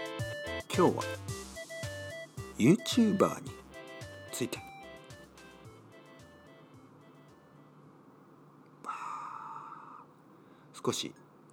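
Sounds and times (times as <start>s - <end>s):
speech: 0.8s - 1.3s, 2.6s - 3.6s, 4.4s - 4.6s, 10.8s - 11.2s
air conditioner humming and whooshing: 2.6s - 11.5s.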